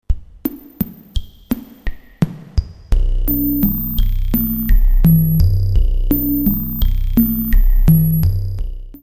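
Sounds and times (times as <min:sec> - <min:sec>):
reversed resonant ticker texture: 0:03.0 - 0:08.6.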